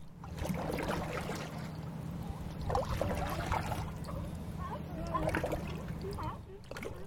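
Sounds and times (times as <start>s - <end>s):
kayak paddles dipping and splashing in calm bay water: 0.0s - 7.0s
soft sloshing of bay water: 0.0s - 7.0s
faint indistinct voices: 3.2s - 7.0s.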